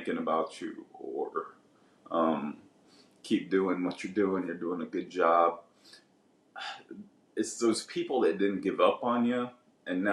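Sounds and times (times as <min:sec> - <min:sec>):
speech: 0:00.0 - 0:02.6, 0:03.2 - 0:06.0, 0:06.6 - 0:10.1
person sneezing: 0:06.6 - 0:06.9.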